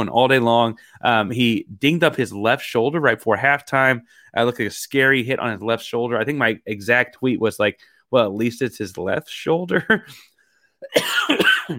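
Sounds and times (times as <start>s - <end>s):
speech: 0.0s - 11.7s
harsh throaty coughs: 10.8s - 11.7s.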